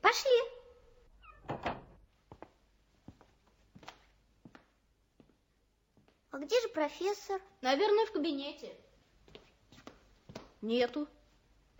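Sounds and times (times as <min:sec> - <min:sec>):
speech: 0:00.1 - 0:00.3, 0:06.4 - 0:08.9, 0:10.6 - 0:11.2
unlocked door opening with rattling clatter: 0:01.2 - 0:02.0.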